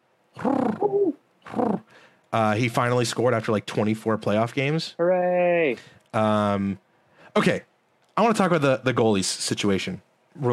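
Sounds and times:
pigeon cooing: 0:00.4 - 0:01.9
speech: 0:00.4 - 0:06.8, 0:07.4 - 0:10.5.

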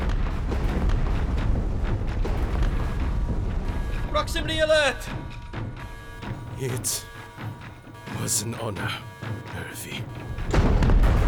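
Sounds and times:
spaceship explosions after collision: 0:00.0 - 0:06.5, 0:10.1 - 0:11.2
speech: 0:04.2 - 0:05.2, 0:06.6 - 0:07.1, 0:08.2 - 0:10.7.

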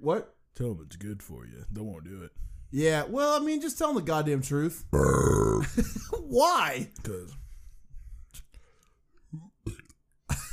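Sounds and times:
speech: 0:00.0 - 0:07.4
short low croaking belch: 0:05.0 - 0:05.8, 0:09.4 - 0:10.0
breathy whispery mouth noises: 0:08.2 - 0:10.2.

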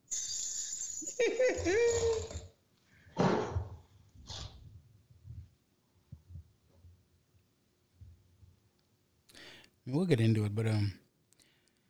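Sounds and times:
jingle bells sound effect jingling: 0:00.0 - 0:02.5
laughter: 0:01.1 - 0:02.4
speech: 0:01.2 - 0:02.3, 0:09.9 - 0:11.0.

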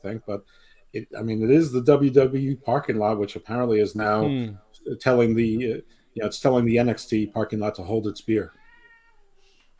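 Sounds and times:
speech: 0:00.0 - 0:08.6
cat meowing: 0:08.5 - 0:09.4.

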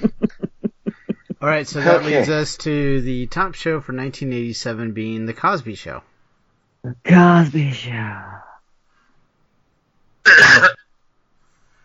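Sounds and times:
laughter: 0:00.0 - 0:02.3
speech: 0:01.4 - 0:06.1, 0:06.8 - 0:08.3
single short harsh cough: 0:10.3 - 0:10.8.

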